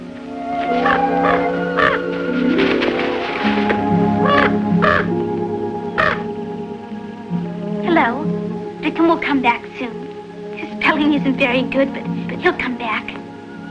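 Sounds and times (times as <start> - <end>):
steady tonal musical backdrop: 0.0 - 13.6
raven cawing beside a garden: 0.2 - 5.2, 5.8 - 6.4
speech: 11.3 - 13.2.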